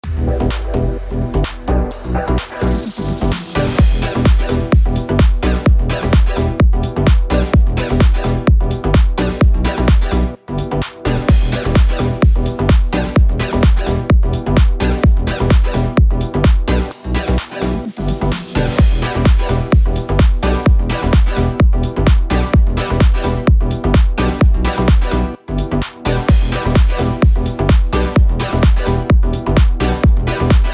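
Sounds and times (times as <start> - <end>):
house music in E minor at 128 bpm: 0.0 - 30.7.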